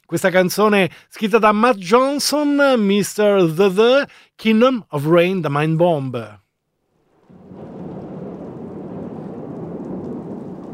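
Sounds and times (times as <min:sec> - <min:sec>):
speech: 0:00.1 - 0:06.4
deep rolling thunder rumble: 0:07.0 - 0:10.7
steady heavy rain: 0:07.1 - 0:10.7.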